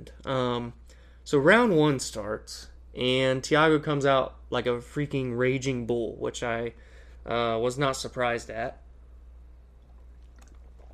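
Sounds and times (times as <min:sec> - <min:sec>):
steady low hum: 0:00.0 - 0:10.9
speech: 0:00.2 - 0:08.8
person sipping water: 0:09.8 - 0:10.9.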